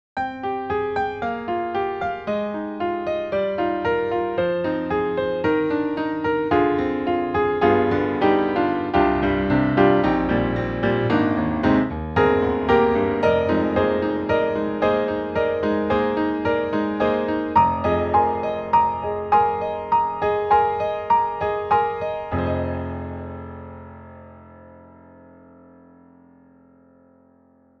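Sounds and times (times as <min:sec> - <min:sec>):
sampled Steinway grand piano: 0:00.2 - 0:27.7.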